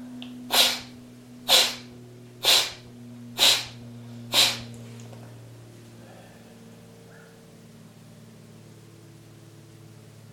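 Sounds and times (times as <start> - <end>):
steady low hum: 0.0 - 10.3
forceful breaths pushed out through the right nostril during a breathing exercise: 0.5 - 4.7.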